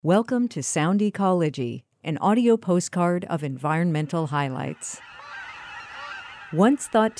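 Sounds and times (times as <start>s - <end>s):
speech: 0.0s - 5.2s, 6.5s - 7.1s
flock of Aleutian cackling geese honking: 4.0s - 7.1s.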